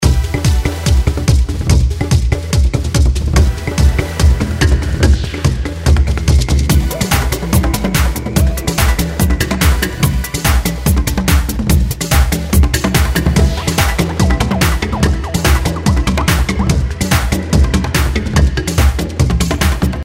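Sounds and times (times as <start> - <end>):
tribal dance music: 0.0 - 20.0.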